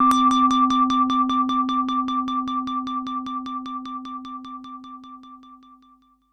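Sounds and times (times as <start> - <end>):
synth bell tone: 0.0 - 2.7.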